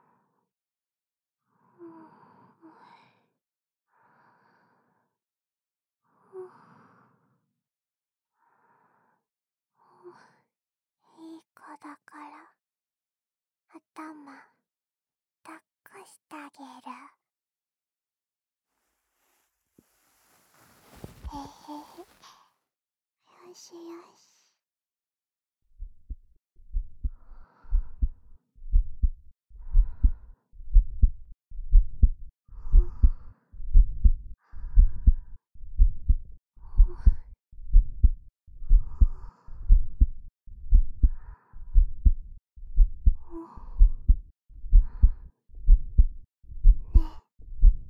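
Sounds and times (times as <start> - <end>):
speech: 14.0 - 14.5, 15.4 - 17.2, 23.5 - 24.3
soft breathy rustle: 18.7 - 22.6
slow human heartbeat: 25.8 - 47.8.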